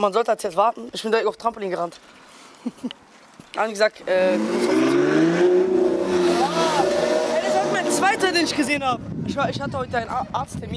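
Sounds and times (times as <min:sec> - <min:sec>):
speech: 0:00.0 - 0:03.0, 0:03.6 - 0:05.4, 0:08.2 - 0:10.7
laughter: 0:02.6 - 0:03.0, 0:06.2 - 0:07.9
powerful car engine revving as it drives past: 0:04.1 - 0:08.7.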